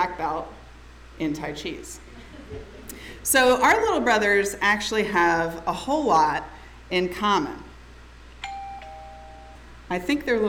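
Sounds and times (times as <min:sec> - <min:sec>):
speech: 0:00.0 - 0:00.6, 0:01.2 - 0:07.6, 0:09.9 - 0:10.4
low hum: 0:00.0 - 0:10.4
installed doorbell chiming a two-note ding-dong: 0:08.4 - 0:09.6.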